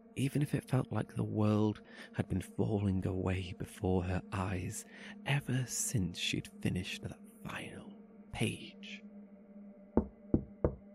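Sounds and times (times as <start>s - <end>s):
speech: 0.2s - 9.1s
firm knocks on a wooden door: 10.0s - 10.9s.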